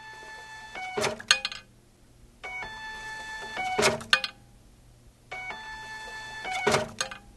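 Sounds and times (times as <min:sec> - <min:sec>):
ticket printer printing season tickets at a symphony orchestra: 0:00.0 - 0:01.4, 0:02.5 - 0:04.2, 0:05.4 - 0:07.2.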